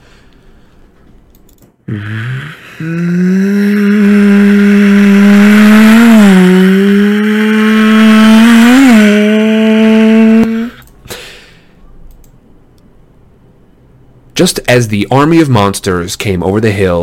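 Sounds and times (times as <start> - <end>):
speech: 1.9 - 2.2, 2.8 - 3.2, 14.4 - 17.0
Sopwith Camel biplane engine buzzing as it swoops down: 3.1 - 10.8.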